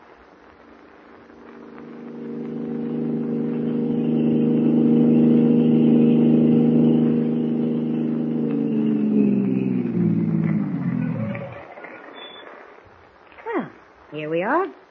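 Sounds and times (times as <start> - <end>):
car engine droning while driving: 0.8 - 11.7.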